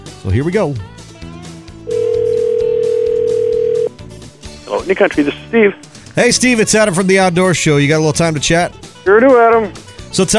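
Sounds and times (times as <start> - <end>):
speech: 0.2 - 1.0, 4.7 - 10.3
loud steady telephone tone of a phone line connecting: 1.9 - 4.0.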